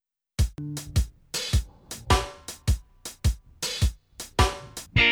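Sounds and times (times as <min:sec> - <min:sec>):
shuffled reggae music: 0:00.4 - 0:05.0.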